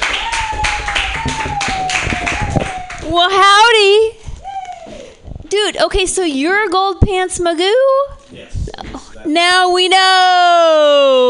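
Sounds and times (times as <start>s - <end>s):
audience clapping: 0.0s - 3.1s
speech: 3.1s - 3.6s, 5.8s - 8.4s, 9.2s - 11.2s.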